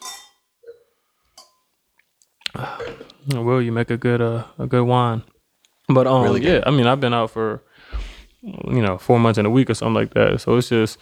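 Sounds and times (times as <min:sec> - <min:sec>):
wine glasses clinking in a toast: 0:00.0 - 0:00.8
speech: 0:02.5 - 0:05.3, 0:05.9 - 0:10.9.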